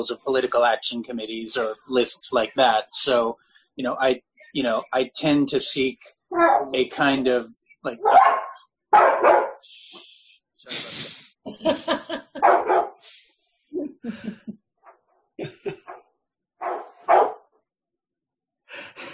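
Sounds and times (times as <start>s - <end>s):
speech: 0.0s - 9.8s, 11.6s - 13.2s, 13.8s - 14.6s
dog barking: 8.0s - 9.6s, 12.4s - 13.0s, 16.6s - 17.5s
laughter: 10.7s - 12.7s, 13.7s - 14.6s, 15.4s - 15.9s, 18.8s - 19.1s.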